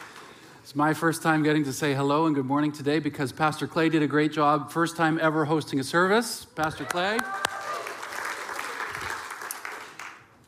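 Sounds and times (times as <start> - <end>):
audience at a church service applauding: 0.0 - 0.4, 6.6 - 10.4
speech: 0.7 - 7.4.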